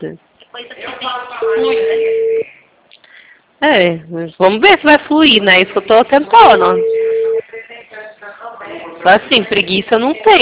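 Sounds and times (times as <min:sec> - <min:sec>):
speech: 0:00.0 - 0:00.7, 0:01.4 - 0:02.2, 0:03.6 - 0:06.9, 0:09.0 - 0:10.4
ringback tone of an outgoing telephone call: 0:01.5 - 0:02.4, 0:06.4 - 0:07.4.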